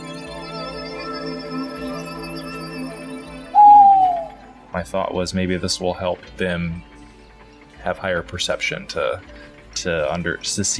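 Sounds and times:
steady humming musical drone: 0.0 - 10.4
owl hooting: 3.6 - 4.8
speech: 4.8 - 6.9, 7.8 - 10.7.

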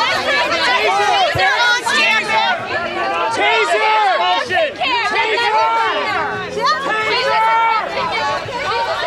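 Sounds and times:
crowd yelling during a chaotic scuffle: 0.0 - 9.0.

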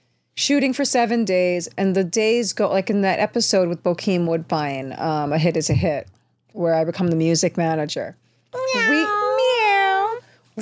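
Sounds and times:
speech: 0.5 - 9.5
person imitating a cat meow: 8.6 - 10.2.

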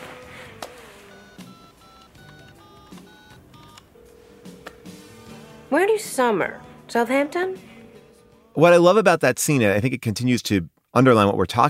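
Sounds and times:
telephone keypad dialing tones: 1.1 - 5.1
speech: 5.7 - 7.7, 8.6 - 11.6.

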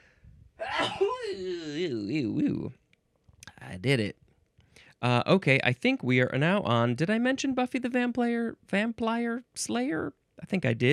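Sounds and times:
person sneezing: 0.6 - 2.6
speech: 0.8 - 2.8, 3.7 - 4.2, 5.0 - 10.9.

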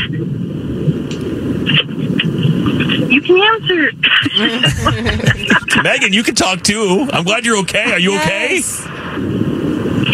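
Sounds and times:
road noise inside a car driving: 0.0 - 10.1
speech: 3.5 - 9.3
laughter: 4.0 - 6.6, 7.7 - 8.8.

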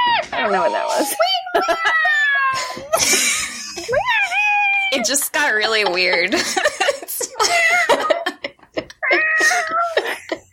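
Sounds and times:
speech: 0.4 - 3.4, 5.1 - 7.0
laughter: 0.4 - 10.5
cat meowing: 1.1 - 2.9, 4.0 - 5.0, 9.0 - 10.0.

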